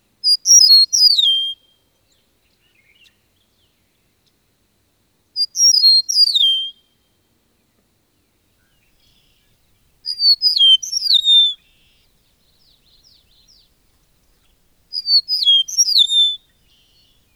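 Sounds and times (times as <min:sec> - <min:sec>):
meadowlark calling: 0:10.0 - 0:12.0, 0:12.6 - 0:13.8, 0:14.4 - 0:17.3.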